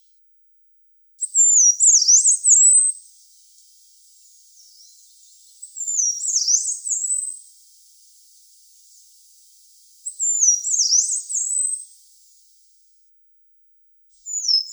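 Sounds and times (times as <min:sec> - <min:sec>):
yellow-browed warbler singing high thin sliding whistles: 0:01.2 - 0:12.5, 0:14.2 - 0:14.7.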